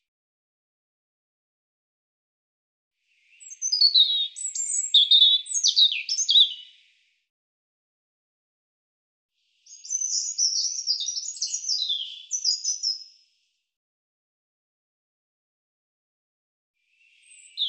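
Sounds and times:
European robin song with sliding whistles and short trills: 0:03.2 - 0:06.8, 0:09.6 - 0:13.2, 0:16.9 - 0:17.6.

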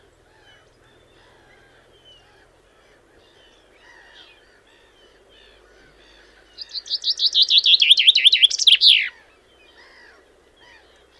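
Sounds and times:
common chaffinch song: 0:00.0 - 0:11.1.

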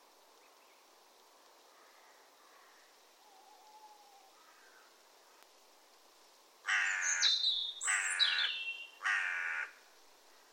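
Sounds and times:
harsh raspy bird calls: 0:06.7 - 0:09.8.

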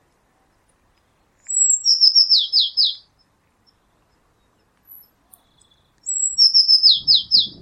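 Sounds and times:
Eurasian blue tit calls: 0:01.5 - 0:03.1, 0:05.4 - 0:07.5.

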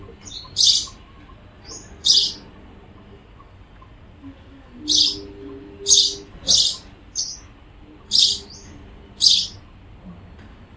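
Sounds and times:
rasping noisy high bird chirps: 0:00.2 - 0:01.0, 0:01.6 - 0:02.4, 0:04.8 - 0:07.5, 0:08.1 - 0:09.6.

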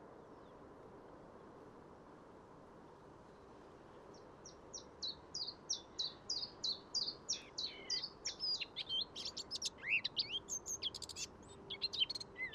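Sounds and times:
Eurasian blackcap song with chattering notes and fluty warble: 0:04.1 - 0:12.5.

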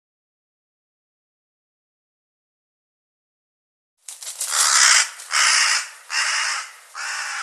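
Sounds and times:
bird cawing: 0:04.4 - 0:07.4.

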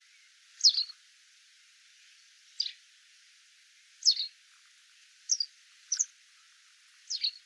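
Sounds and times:
short high sharp bird calls: 0:00.0 - 0:01.0, 0:02.5 - 0:02.8, 0:04.0 - 0:04.4, 0:05.3 - 0:06.5, 0:07.1 - 0:07.4
faint steady hiss: 0:00.0 - 0:07.4.

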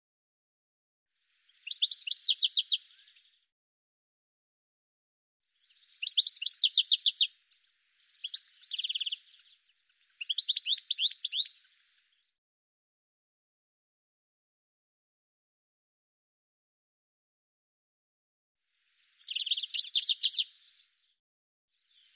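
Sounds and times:
bird chirping: 0:01.2 - 0:03.5, 0:05.5 - 0:12.4, 0:19.0 - 0:21.2, 0:21.8 - 0:22.1.

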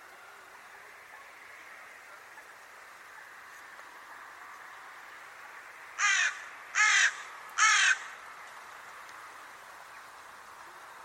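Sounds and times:
faint steady background hiss: 0:00.0 - 0:11.0
bird giving harsh raspy caws: 0:06.0 - 0:08.2.

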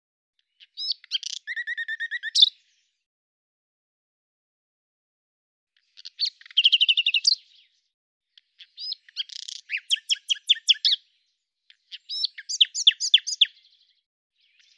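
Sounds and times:
common nightingale song: 0:00.4 - 0:03.0, 0:05.8 - 0:07.8, 0:08.4 - 0:14.7.

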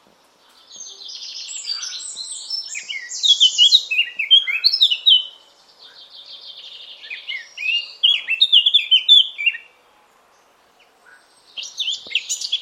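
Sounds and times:
Eurasian blackcap singing: 0:00.7 - 0:09.7, 0:11.6 - 0:12.5.

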